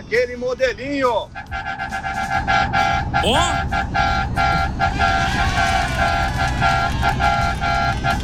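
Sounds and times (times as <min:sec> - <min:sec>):
low rumble of engines: 0:00.0 - 0:08.2
speech: 0:00.1 - 0:08.2
loud sustained car horns honking: 0:01.0 - 0:08.2.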